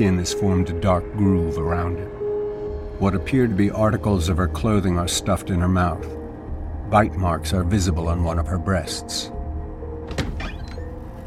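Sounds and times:
speech: 0.0s - 2.2s, 3.0s - 6.2s, 6.9s - 9.4s
front door opening: 9.9s - 11.2s.

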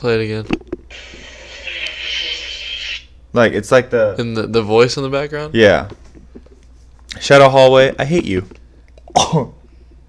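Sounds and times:
speech: 0.0s - 1.2s, 3.4s - 6.0s, 7.2s - 9.6s
cough: 9.1s - 9.6s.

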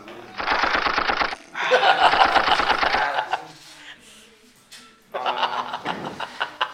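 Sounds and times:
rapid automatic gunfire sound effects: 0.4s - 1.4s, 2.0s - 3.2s
laughter: 1.5s - 4.0s, 5.1s - 6.7s.

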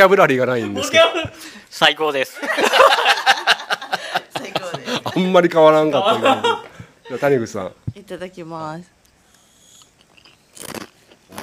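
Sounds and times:
speech: 0.0s - 3.1s, 5.2s - 9.0s
laughter: 2.4s - 7.5s
loud crackling chews of a roasted snack: 9.0s - 11.4s
crunchy bite into a crisp roasted snack: 9.6s - 11.4s.

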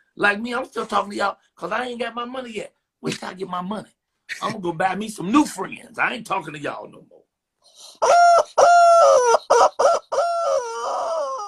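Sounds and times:
speech: 0.2s - 10.3s
rooster crowing: 8.0s - 11.4s.

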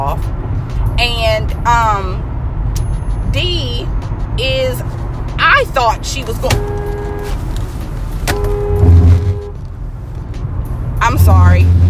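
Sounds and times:
speech: 0.0s - 2.3s, 3.3s - 7.0s, 11.1s - 11.8s
steady road noise: 0.0s - 11.8s
vehicle passing by on the road: 3.9s - 11.8s.

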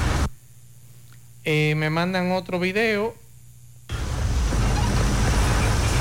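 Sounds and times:
brief quiet hum: 0.0s - 6.0s
speech: 1.5s - 3.2s
heavy rain downpour on a street: 3.9s - 6.0s.

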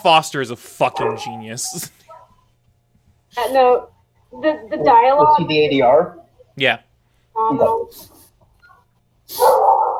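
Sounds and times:
speech: 0.0s - 2.0s, 3.3s - 6.8s, 7.4s - 8.2s, 9.3s - 9.6s
angry dog barking with harsh snarling barks: 9.4s - 9.9s.

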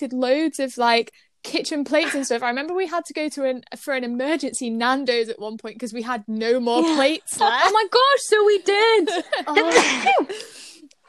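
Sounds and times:
speech: 0.0s - 11.0s
laughter: 8.8s - 10.6s
person sneezing: 9.6s - 11.0s.

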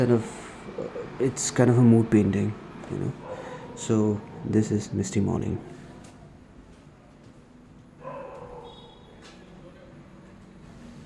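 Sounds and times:
speech: 0.0s - 3.2s, 3.8s - 5.7s
dog barking outside: 3.1s - 4.6s, 8.0s - 9.1s.

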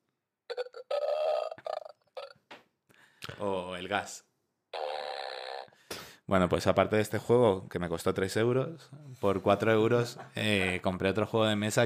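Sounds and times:
toy's electronic burp sound effect: 0.5s - 2.4s, 4.7s - 5.8s
speech: 3.4s - 4.3s, 6.3s - 11.8s.

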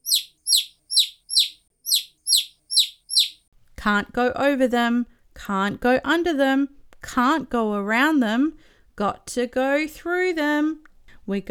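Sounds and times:
chicks cheeping: 0.0s - 3.4s
speech: 3.8s - 11.4s.

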